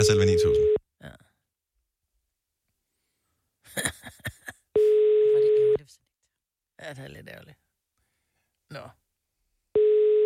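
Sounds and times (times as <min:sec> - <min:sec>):
speech: 0:00.0 - 0:00.8, 0:06.8 - 0:07.6, 0:08.7 - 0:09.0
telephone ringing tone while a call connects: 0:04.8 - 0:05.8, 0:09.8 - 0:10.2.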